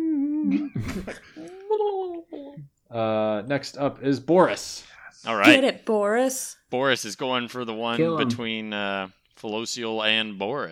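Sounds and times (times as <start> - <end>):
person imitating a cube creature whimpering quietly: 0.0 - 2.7
speech: 0.4 - 1.5, 2.9 - 10.7.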